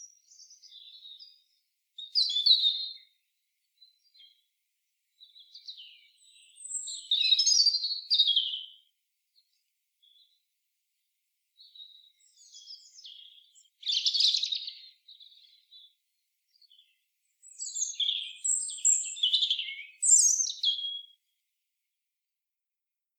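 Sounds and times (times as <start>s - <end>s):
European robin singing: 0.0s - 3.2s, 5.2s - 8.9s, 11.6s - 21.3s.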